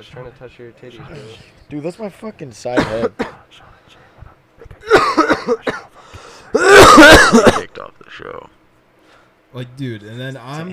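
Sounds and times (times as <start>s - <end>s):
speech: 0.0s - 4.0s, 5.4s - 5.9s, 9.5s - 10.7s
person coughing harshly into the microphone: 2.7s - 3.5s, 4.6s - 7.8s.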